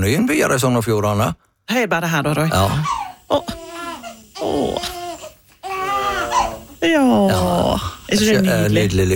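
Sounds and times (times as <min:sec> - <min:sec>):
speech: 0:00.0 - 0:03.6, 0:04.4 - 0:05.0, 0:06.8 - 0:09.1
baby crying and babbling: 0:02.7 - 0:06.8.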